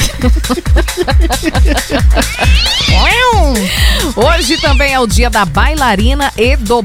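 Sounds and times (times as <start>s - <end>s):
laughter: 0.0s - 4.4s
rhythmic thumping beat: 0.0s - 6.8s
speech: 0.2s - 6.8s
cat meowing: 2.2s - 5.0s.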